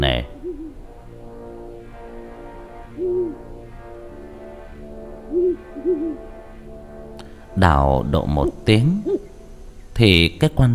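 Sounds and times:
speech: 0.0 - 0.3, 7.6 - 9.2, 10.0 - 10.7
owl hooting at night: 0.0 - 1.0, 2.5 - 10.4.

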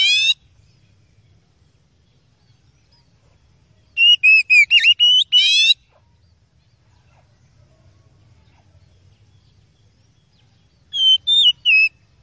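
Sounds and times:
Oriental magpie-robin singing: 0.0 - 0.4, 3.9 - 5.9, 10.3 - 12.1.

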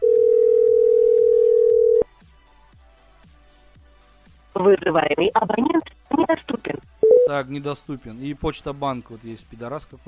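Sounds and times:
telephone dial tone: 0.0 - 2.0
speech: 4.6 - 6.4, 7.3 - 10.0.

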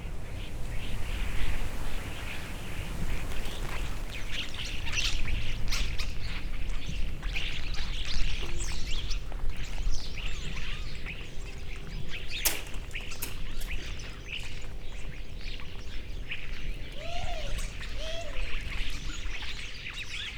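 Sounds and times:
flock of starlings chattering while resting in trees: 0.1 - 20.2
sharp click: 12.4 - 13.9.

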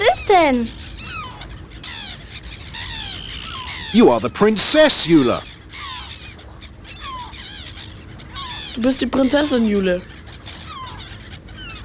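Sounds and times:
bird calling with warbling honk-like cries: 0.0 - 11.8
speech: 0.3 - 0.8, 3.9 - 5.5, 8.8 - 10.1.

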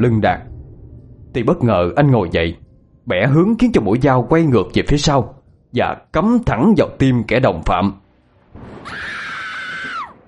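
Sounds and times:
speech: 0.0 - 0.5, 1.3 - 8.0
low rumbling background: 0.0 - 8.9
person screaming in terror: 8.8 - 10.2.

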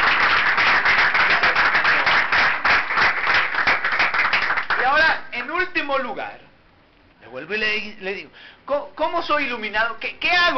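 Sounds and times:
church congregation applauding during a worship service: 0.0 - 5.2
speech: 5.9 - 6.4, 7.3 - 10.5.

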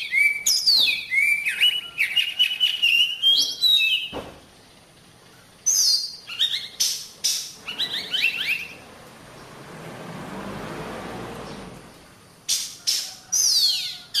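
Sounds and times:
Oriental magpie-robin giving sharp high whistled and chattering notes: 0.0 - 4.1, 5.7 - 8.8.

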